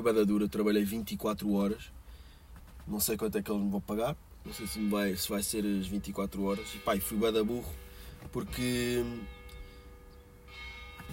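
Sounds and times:
speech: 0:00.0 - 0:02.0, 0:02.9 - 0:09.4
church bell ringing: 0:04.4 - 0:11.1.

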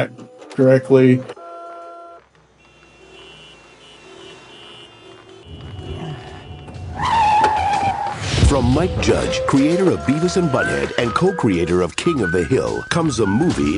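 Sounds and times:
speech: 0:00.0 - 0:01.4, 0:08.6 - 0:13.7
car engine rumbling as the vehicle moves back and forth: 0:01.3 - 0:13.7
tire squeal: 0:02.6 - 0:11.0.

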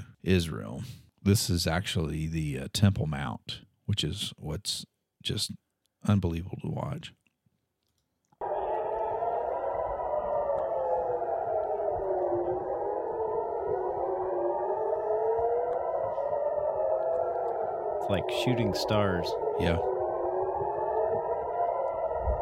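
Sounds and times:
speech: 0:00.2 - 0:07.2, 0:18.1 - 0:20.0
air raid sirens wailing: 0:08.4 - 0:22.4.

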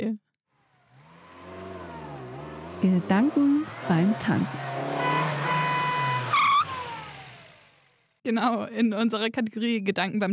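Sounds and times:
speech: 0:00.0 - 0:00.2, 0:02.8 - 0:04.7, 0:08.2 - 0:10.3
car engine as the car pulls off the road into a petrol station: 0:00.5 - 0:08.2.

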